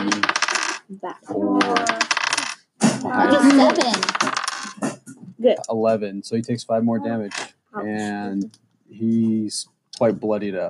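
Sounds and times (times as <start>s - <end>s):
dice clattering across a hard tabletop: 0.0s - 0.9s, 1.6s - 2.6s, 3.5s - 4.8s
speech: 1.0s - 2.0s, 5.4s - 10.6s.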